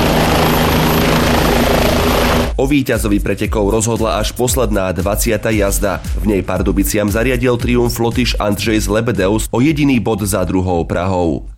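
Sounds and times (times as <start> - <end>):
helicopter carrying away an injured rider at a speedway race: 0.0 - 2.6
speech: 2.6 - 11.5.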